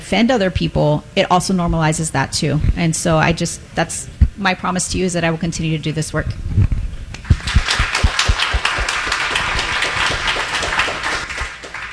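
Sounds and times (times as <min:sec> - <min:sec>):
speech: 0:00.1 - 0:06.7
audience at a candidates' event applauding: 0:07.2 - 0:11.9.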